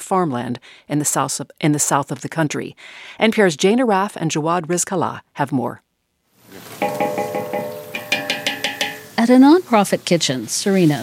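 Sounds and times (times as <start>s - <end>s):
speech: 0.1s - 5.8s, 9.3s - 11.0s
metallic scraping and stirring of slivered almonds sautéing in a huge aluminum pot: 6.6s - 9.3s
ringing strokes on a huge aluminum pot: 6.8s - 9.2s.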